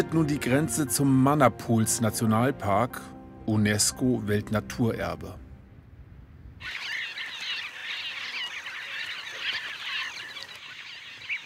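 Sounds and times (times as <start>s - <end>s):
speech: 0.0s - 5.4s, 6.6s - 6.9s
carmine bee-eater colony chirping and trilling: 6.6s - 11.4s.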